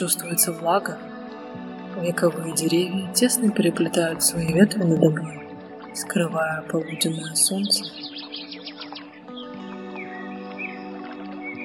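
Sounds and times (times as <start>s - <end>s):
speech: 0.0s - 5.4s, 6.0s - 8.3s
bird chirps and trills in a warm humid wood of old trees: 6.8s - 10.1s.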